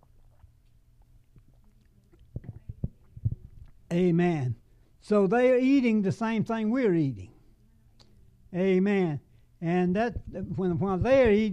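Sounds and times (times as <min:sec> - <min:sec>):
person gulping and swallowing a sip of water: 0:00.0 - 0:03.9
speech: 0:03.9 - 0:07.3, 0:08.5 - 0:11.5.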